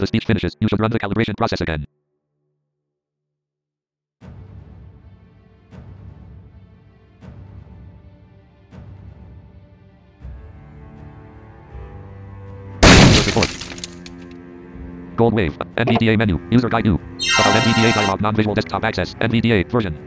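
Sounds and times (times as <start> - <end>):
speech: 0.0 - 2.0, 15.2 - 20.0
barrel being smashed game sound effect: 12.8 - 14.2.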